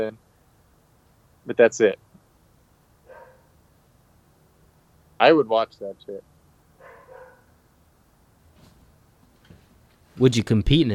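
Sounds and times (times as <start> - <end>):
speech: 0.0 - 0.2, 1.5 - 2.0, 5.2 - 6.3, 10.2 - 10.9
dog barking: 3.0 - 3.5, 6.8 - 7.5.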